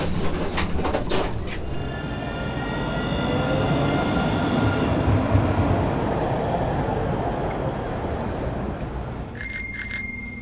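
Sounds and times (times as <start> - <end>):
tram rumbling in Strasbourg: 0.0 - 10.4
bicycle bell ringing in Strasbourg: 9.4 - 10.4.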